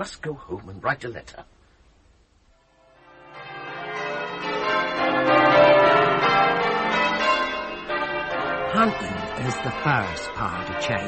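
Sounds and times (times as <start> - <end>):
speech: 0.0 - 1.6, 8.8 - 11.0
church bells ringing in an overlapping peal: 2.8 - 11.0.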